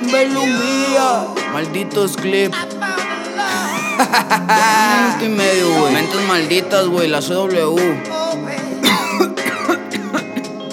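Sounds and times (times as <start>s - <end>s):
speech: 0.1s - 3.0s, 4.0s - 8.2s
laughter: 3.5s - 6.1s, 8.9s - 10.5s
sharp coughs: 8.8s - 10.7s.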